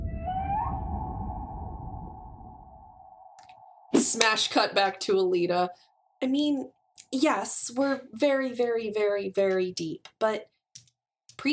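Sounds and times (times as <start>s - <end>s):
low murky underwater rumble: 0.0s - 3.4s
whale calling deep underwater in the ocean: 0.0s - 3.8s
speech: 4.0s - 10.5s.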